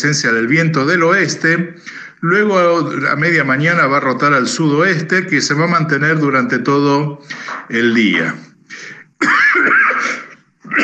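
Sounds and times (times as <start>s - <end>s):
speech: 0.0s - 9.8s
harsh raspy coughing from a person reading a weather forecast: 8.7s - 10.8s
throat clearing from a person reading a weather forecast: 8.9s - 10.8s.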